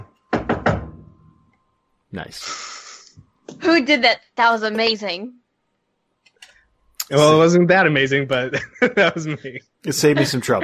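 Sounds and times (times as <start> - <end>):
firm knocks on a wooden door: 0.3 - 1.0
speech: 2.1 - 2.6, 3.6 - 5.4, 7.1 - 10.6
laughter: 8.3 - 10.6.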